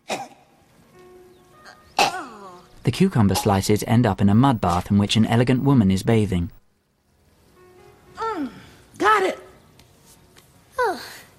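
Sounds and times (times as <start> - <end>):
woman clearing her throat: 0.0 - 0.4, 2.0 - 2.6
speech: 2.8 - 6.6.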